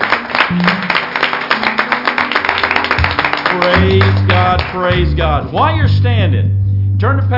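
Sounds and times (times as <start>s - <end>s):
audience applause during a worship service: 0.0s - 5.0s
speech: 0.5s - 0.8s, 3.6s - 7.3s
faint low tones: 3.8s - 7.3s.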